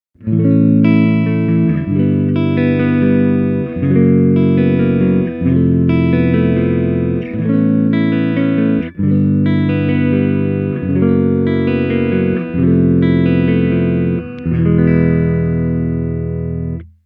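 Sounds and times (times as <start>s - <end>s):
clean guitar tone on neck pickup: 0.2s - 17.0s.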